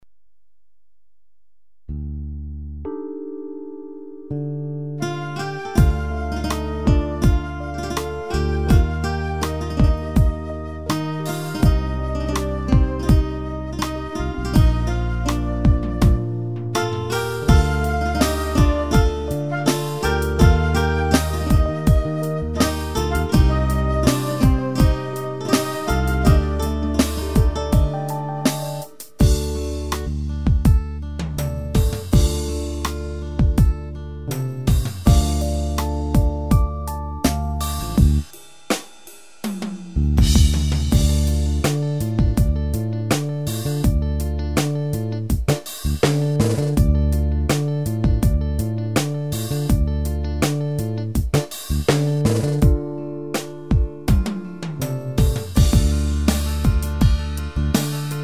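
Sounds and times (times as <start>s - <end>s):
slow keyboard rhythm: 2.7s - 38.4s, 39.6s - 58.2s.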